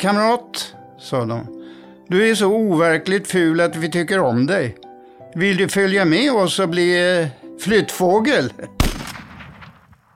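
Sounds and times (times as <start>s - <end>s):
speech: 0.0s - 8.8s
gunshots over reeds while hunting geese: 8.8s - 10.1s.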